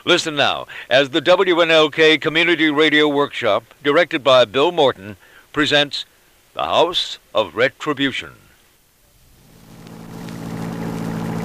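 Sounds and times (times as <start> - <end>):
speech: 0.0 - 8.4
car engine humming while driving along a country road at night: 9.1 - 11.4.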